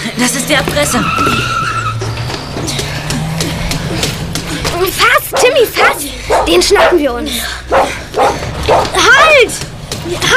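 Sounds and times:
car engine revving as the vehicle pulls away at speed: 0.0 - 10.3
speech: 0.2 - 1.7, 4.8 - 10.3
tire squeal: 0.2 - 3.9.

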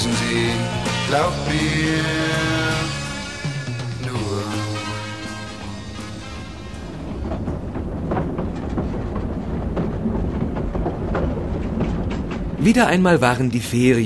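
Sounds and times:
tonal music notes: 0.0 - 8.1
train rolling along the rails with deep continuous rumble: 0.0 - 14.0
speech: 1.1 - 2.6, 12.6 - 14.0.

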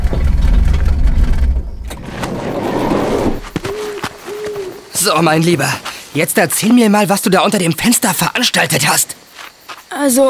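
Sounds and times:
car engine rumbling: 0.0 - 3.6
speech: 5.0 - 9.2, 9.9 - 10.2.

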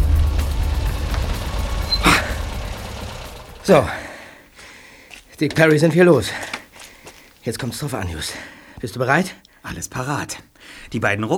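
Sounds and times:
car engine low rumble as the car pulls over: 0.0 - 4.6
car tyres crunching as they settle onto sand: 3.6 - 10.5
speech: 3.7 - 4.0, 5.4 - 6.6, 7.4 - 11.3.

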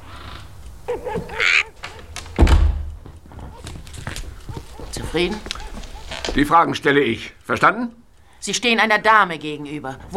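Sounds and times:
speech: 0.9 - 1.6, 5.1 - 5.6, 6.4 - 10.1
door shutting with a solid heavy thud: 1.2 - 3.1.

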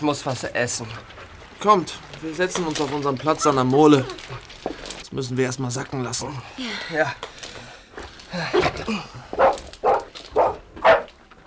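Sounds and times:
speech: 0.0 - 7.5, 8.3 - 9.4
dog barking excitedly: 8.5 - 11.2
dog whining yips: 9.4 - 11.1.

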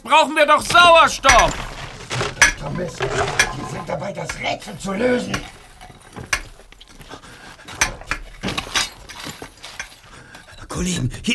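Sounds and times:
speech: 0.0 - 1.7, 2.6 - 5.6, 10.8 - 11.3
soft scraping: 0.6 - 10.8
metallic knocks and clinks of chiselling an air hole: 0.7 - 10.7.

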